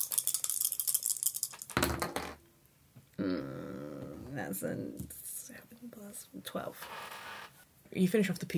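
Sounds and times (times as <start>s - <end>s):
four dice clattering across a hard surface: 0.0s - 2.4s
speech: 3.2s - 3.6s, 4.4s - 7.1s, 7.9s - 8.5s.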